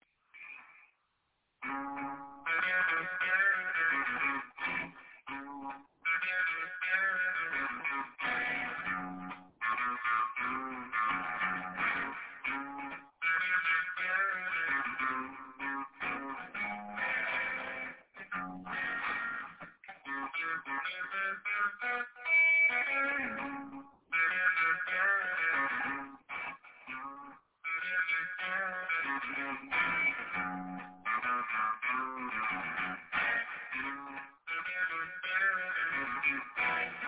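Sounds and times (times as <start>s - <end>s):
echoey blues music: 1.6s - 37.0s.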